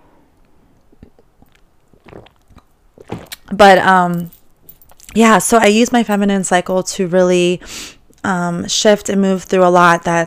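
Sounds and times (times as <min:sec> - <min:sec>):
person sipping water from a glass: 0:00.8 - 0:03.5
soft wet slurps and swallows: 0:00.8 - 0:03.5
speech: 0:03.5 - 0:04.4, 0:05.2 - 0:10.2.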